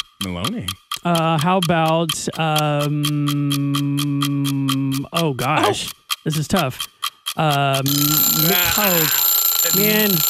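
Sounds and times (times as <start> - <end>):
speech: 0.2 - 10.2
game show buzzer during a name-guessing round: 7.9 - 10.2.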